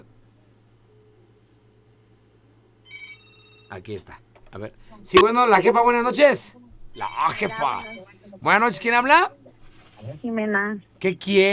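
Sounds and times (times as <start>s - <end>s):
steady low electrical hum: 0.0s - 11.5s
bright electronic telephone ring: 2.9s - 3.7s, 7.0s - 8.1s
speech: 3.7s - 9.4s, 10.0s - 11.5s.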